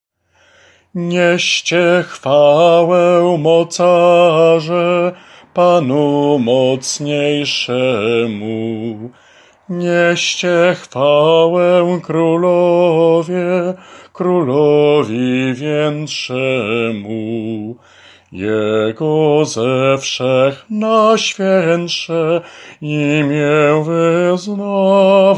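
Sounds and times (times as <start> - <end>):
alto vocal part: 0.6 - 25.3.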